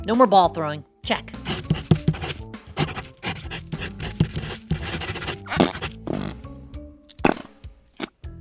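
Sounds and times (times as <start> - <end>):
speech: 0.0 - 1.4
pencil writing on paper: 1.5 - 6.0.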